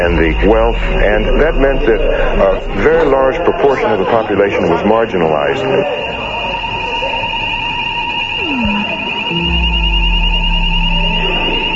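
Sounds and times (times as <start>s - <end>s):
low rumble: 0.0s - 4.2s, 8.4s - 11.7s
descending tone: 0.0s - 4.3s, 6.2s - 11.7s
speech: 0.0s - 6.3s
electronic alarm ringing with a steady high tone: 0.0s - 11.7s.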